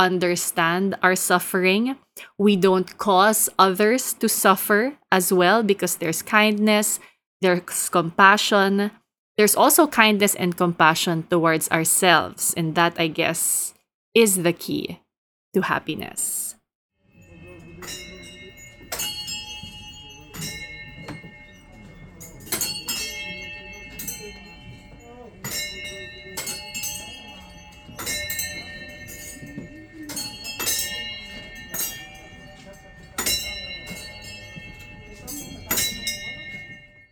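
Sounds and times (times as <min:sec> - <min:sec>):
speech: 0:00.0 - 0:15.0, 0:15.6 - 0:16.4, 0:17.8 - 0:18.0
prayer wheels turned at the memorial chorten in Thimphu Bhutan striking small bells: 0:17.0 - 0:37.0.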